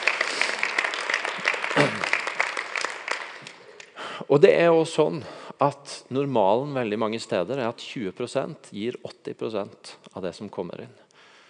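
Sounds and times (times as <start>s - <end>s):
audience applause: 0.0s - 3.9s
speech: 4.3s - 11.0s.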